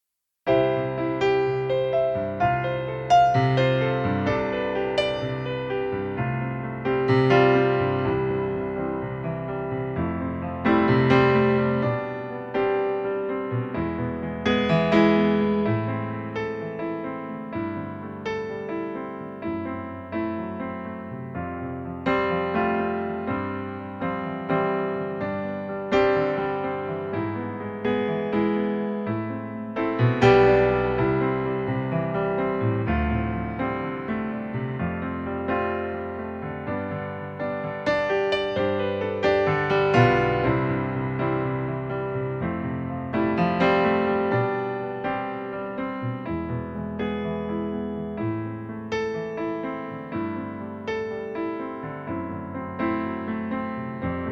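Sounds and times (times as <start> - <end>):
piano playing in C major: 0.5 - 54.3.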